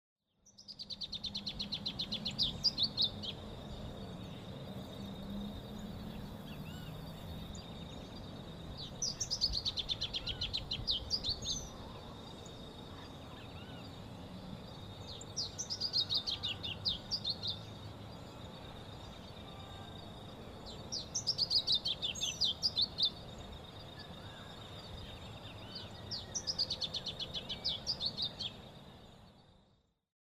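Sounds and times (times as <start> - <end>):
Geothlypis aequinoctialis masked yellowthroat singing: 0.3 - 29.8.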